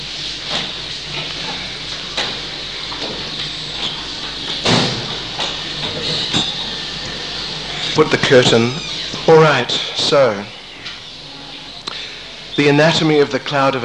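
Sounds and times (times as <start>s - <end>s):
door being opened: 0.5s - 11.0s
speech: 8.0s - 10.6s, 12.6s - 13.8s.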